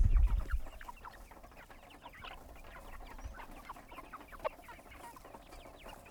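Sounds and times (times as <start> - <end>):
low heavy thumps: 0.0 - 0.6
chickens clucking on a goat farm: 0.0 - 6.0.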